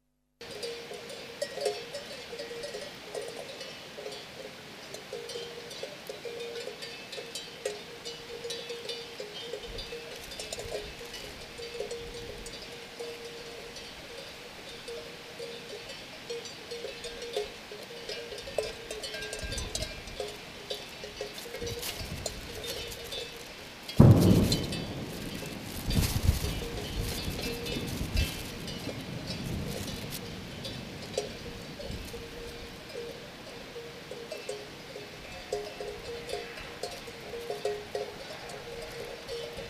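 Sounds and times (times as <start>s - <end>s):
cow bells on the Camino de Santiago in Spain: 0.4s - 39.6s
explosion on the Camino de Santiago in Spain: 24.0s - 27.0s.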